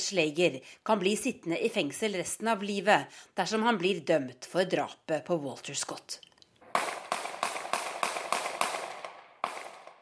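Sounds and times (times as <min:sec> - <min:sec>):
speech: 0:00.1 - 0:06.3
gunshots recorded on a phone: 0:06.7 - 0:10.0.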